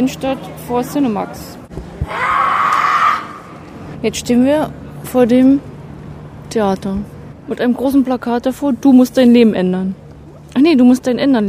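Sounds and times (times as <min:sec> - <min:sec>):
speech: 0:00.0 - 0:02.2, 0:04.0 - 0:05.7, 0:06.5 - 0:11.4
woman screaming loudly outdoors: 0:02.1 - 0:03.5.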